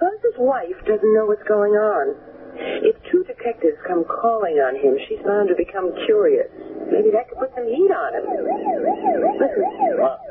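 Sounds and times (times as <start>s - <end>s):
speech: 0.4s - 10.2s
emergency vehicle siren wailing in a town: 6.0s - 10.2s.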